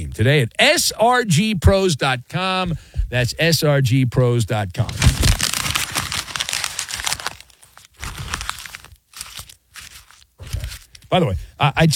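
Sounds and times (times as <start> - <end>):
speech: 0.0 - 5.3, 11.1 - 11.9
paper being crumpled and folded: 4.8 - 11.1.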